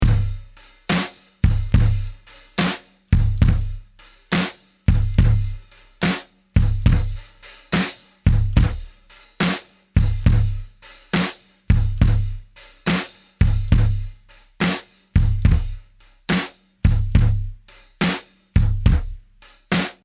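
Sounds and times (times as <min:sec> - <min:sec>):
drums with reverb: 0:00.0 - 0:20.0.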